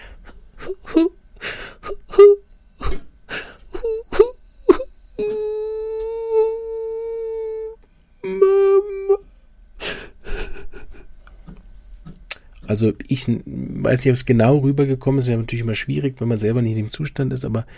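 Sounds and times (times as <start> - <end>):
voice imitating a child's pitiful crying, sobbing and whimpering: 0.6 - 1.2, 1.8 - 3.0, 3.7 - 9.2
speech: 12.7 - 17.7.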